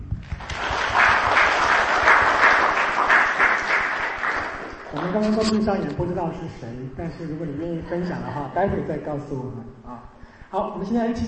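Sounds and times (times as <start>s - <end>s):
crowd applauding: 0.0s - 5.4s
speech: 5.1s - 11.2s.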